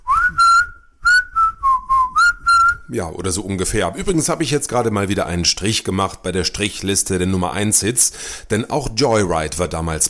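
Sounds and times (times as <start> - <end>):
person whistling a tune: 0.0 - 2.9
speech: 2.9 - 10.0.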